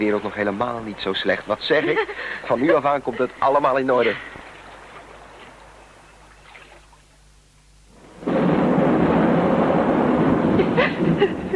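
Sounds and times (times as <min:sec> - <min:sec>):
speech: 0:00.0 - 0:04.4
laughter: 0:01.6 - 0:04.4, 0:10.6 - 0:11.5
thunder roaring: 0:07.9 - 0:11.5.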